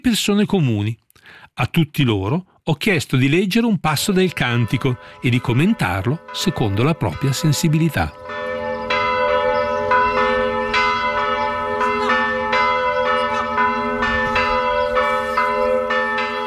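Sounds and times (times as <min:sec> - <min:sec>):
speech: 0:00.0 - 0:08.6
festive church bells pealing: 0:03.9 - 0:16.4.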